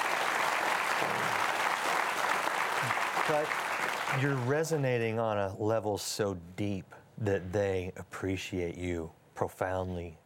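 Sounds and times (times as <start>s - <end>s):
audience applause with many hands clapping: 0.0s - 4.5s
speech: 3.3s - 10.2s.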